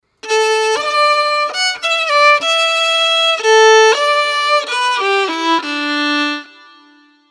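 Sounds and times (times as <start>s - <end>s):
violin improvisation: 0.2s - 7.2s.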